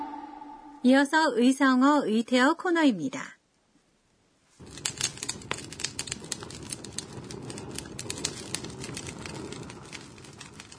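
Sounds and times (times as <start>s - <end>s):
speech: 0.8s - 3.4s
campfire crackling: 4.6s - 10.7s
low rushing roar of campfire flames: 4.6s - 10.7s.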